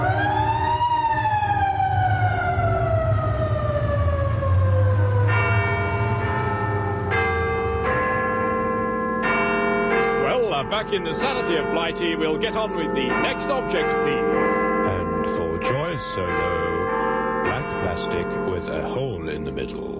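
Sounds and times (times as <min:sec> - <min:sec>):
blaring stepped horn-like siren tones: 0:00.0 - 0:08.5, 0:10.2 - 0:18.8
New York emergency vehicle siren wailing: 0:00.0 - 0:09.2, 0:10.0 - 0:19.2
steady low traffic rumble: 0:00.0 - 0:19.9
speech: 0:10.7 - 0:15.4, 0:16.0 - 0:16.8, 0:17.5 - 0:19.9.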